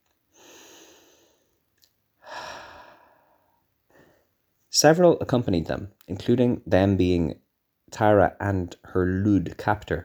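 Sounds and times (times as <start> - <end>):
person taking a deep breath: 0.3 - 1.6, 2.2 - 4.3
speech: 4.8 - 10.0.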